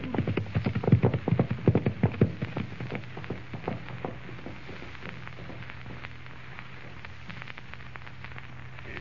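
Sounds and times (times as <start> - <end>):
hooves of several horses with riders trotting: 0.0 - 6.2.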